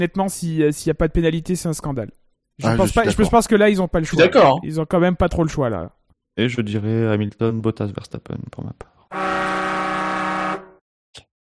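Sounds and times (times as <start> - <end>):
speech: 0.0 - 9.3
horn blast signaling end of the show: 9.1 - 10.8.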